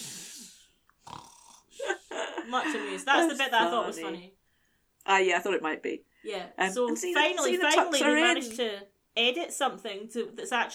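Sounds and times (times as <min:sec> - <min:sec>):
person snoring: 0:00.0 - 0:02.1
speech: 0:02.5 - 0:04.4, 0:05.0 - 0:10.7.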